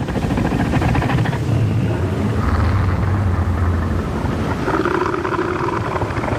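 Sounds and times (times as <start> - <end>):
wind: 0.0 - 6.3
male northern elephant seal threat roar: 2.3 - 6.3.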